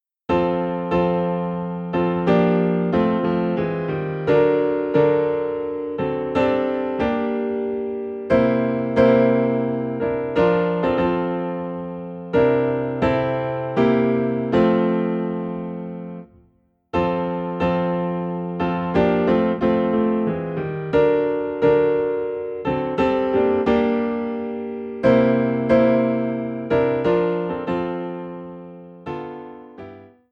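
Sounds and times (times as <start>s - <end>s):
piano piece in F: 0.0s - 30.3s.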